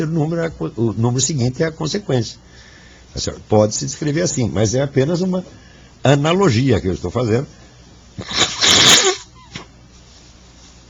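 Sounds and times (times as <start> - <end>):
speech: 0.0 - 7.6, 8.2 - 8.9
sniff: 8.2 - 9.6
person with flu sneezing: 8.2 - 9.7.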